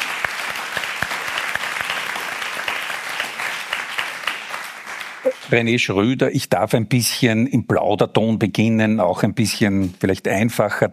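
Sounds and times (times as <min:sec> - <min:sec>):
audience applause: 0:00.0 - 0:05.8
speech: 0:05.5 - 0:10.9.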